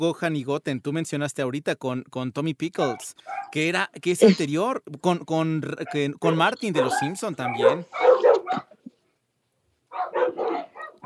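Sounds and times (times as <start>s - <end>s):
speech: 0.0s - 8.7s
pet dogs barking: 2.8s - 3.6s, 5.8s - 8.8s, 9.9s - 11.0s.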